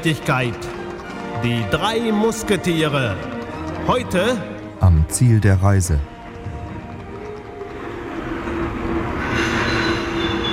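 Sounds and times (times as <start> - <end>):
speech: 0.0 - 0.8, 1.4 - 6.1
express train pulling into station: 0.0 - 10.5
high metallic train wheel squeal: 9.0 - 10.5.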